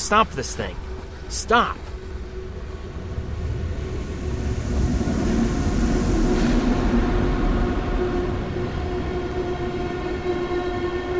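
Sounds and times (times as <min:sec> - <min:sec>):
train rumbling along rails: 0:00.0 - 0:11.1
speech: 0:00.1 - 0:01.9.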